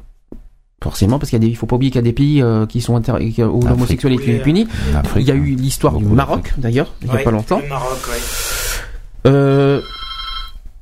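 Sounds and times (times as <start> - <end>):
speech: 0.9 - 8.6, 9.2 - 10.0
broadband hiss: 7.6 - 9.0
telephone ringing with an electronic tone: 9.6 - 10.7.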